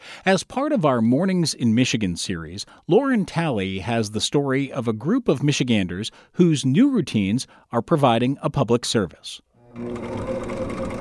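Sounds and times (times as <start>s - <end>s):
speech: 0.2s - 10.6s
home sewing machine stitching cloth masks: 9.6s - 10.9s.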